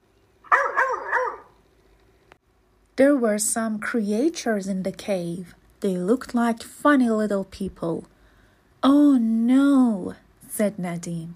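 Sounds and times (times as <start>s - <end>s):
dog barking: 0.4s - 1.6s
speech: 3.0s - 8.1s, 8.8s - 11.3s.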